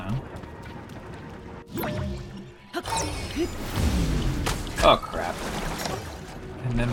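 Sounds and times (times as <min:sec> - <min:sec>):
tonal action-adventure game effects and chimes: 0:00.0 - 0:06.9
video-game character falling off a water wheel into water: 0:03.5 - 0:06.9
speech: 0:04.8 - 0:05.5, 0:06.7 - 0:06.9.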